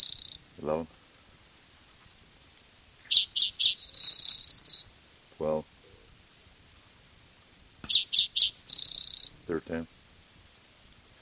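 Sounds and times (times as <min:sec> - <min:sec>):
black-throated gray warbler singing: 0:00.0 - 0:00.5, 0:03.0 - 0:05.0, 0:07.8 - 0:09.4
speech: 0:00.6 - 0:01.0, 0:09.6 - 0:10.0.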